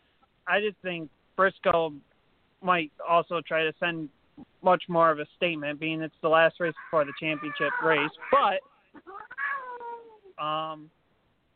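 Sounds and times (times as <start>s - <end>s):
speech: 0.5s - 9.1s, 10.4s - 11.0s
unhappy cat meowing: 6.8s - 10.3s.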